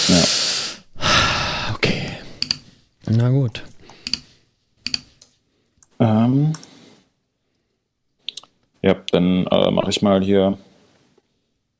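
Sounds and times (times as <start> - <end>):
person hesitant vocal filler: 1.0 - 2.5
speech: 3.1 - 3.7, 6.3 - 6.6, 8.8 - 10.7
laptop butterfly keyboard typing clicks: 4.0 - 5.3.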